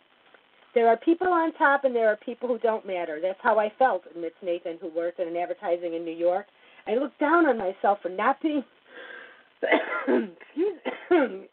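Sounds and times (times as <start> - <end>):
speech: 0.7 - 8.8, 9.6 - 11.5
person coughing: 9.6 - 11.5
throat clearing: 9.6 - 11.5.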